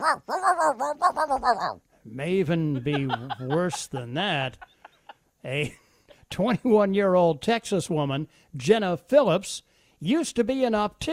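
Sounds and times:
woman imitating a dog whimpering and yelping: 0.0s - 1.8s
speech: 0.0s - 4.7s, 5.4s - 11.1s
laughter: 2.5s - 5.8s.

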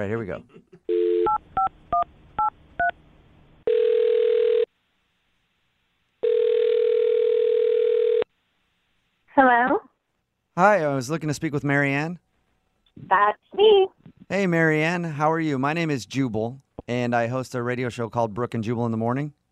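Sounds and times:
speech: 0.0s - 0.8s, 9.4s - 9.9s, 10.6s - 12.2s, 13.0s - 19.4s
phone dial tone: 0.9s - 1.4s, 3.7s - 4.7s, 6.2s - 8.3s.

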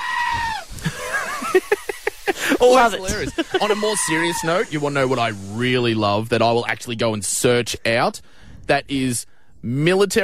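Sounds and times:
goat screaming like a human: 0.0s - 0.8s, 2.8s - 5.0s
laughter: 0.8s - 4.3s
speech: 2.6s - 10.2s.

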